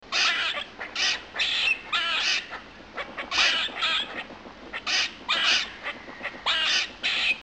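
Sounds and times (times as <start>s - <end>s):
squirrel distress calls: 0.1s - 7.4s.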